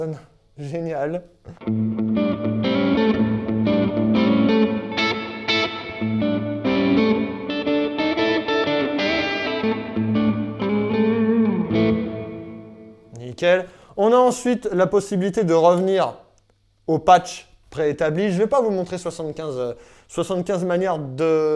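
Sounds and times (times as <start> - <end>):
speech: 0.0 - 2.6, 13.4 - 16.2, 16.9 - 21.5
electric guitar playing chords and riffs with spring and hall reverb: 1.5 - 13.2.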